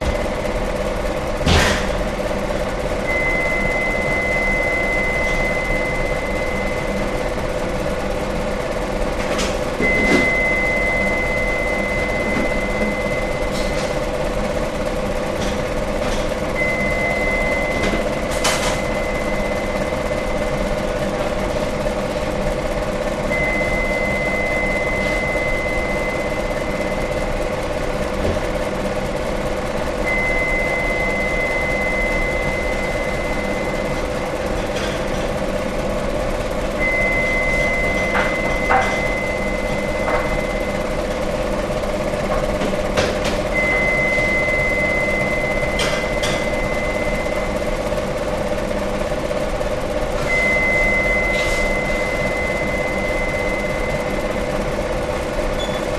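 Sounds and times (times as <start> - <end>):
bakers working in background: 0.0 - 55.9
bakery stirring machine running in Germany: 0.0 - 55.9
beeping in a bakery: 3.0 - 7.7, 9.8 - 15.2, 15.9 - 21.3, 22.2 - 35.8, 36.4 - 55.9.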